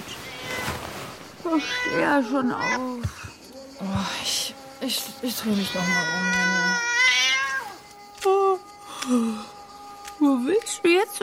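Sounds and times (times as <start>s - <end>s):
cat meowing: 0.1s - 0.8s, 1.5s - 3.0s, 5.5s - 7.8s
speech: 1.4s - 3.2s, 3.8s - 7.2s, 9.0s - 9.5s, 10.2s - 11.2s.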